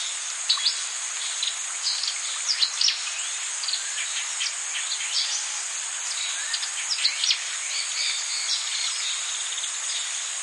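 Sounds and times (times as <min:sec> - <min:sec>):
dense steady high insect drone in the Amazon rainforest: 0:00.0 - 0:10.4.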